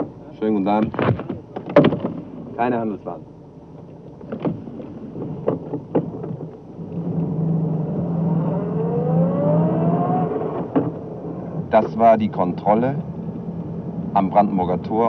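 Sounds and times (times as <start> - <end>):
speech: 0.4 - 1.9, 2.6 - 3.3, 11.7 - 13.1, 14.1 - 15.0
sharp knocks: 0.8 - 2.2, 4.2 - 6.6
car driving along a city boulevard in East Berlin: 6.8 - 12.0.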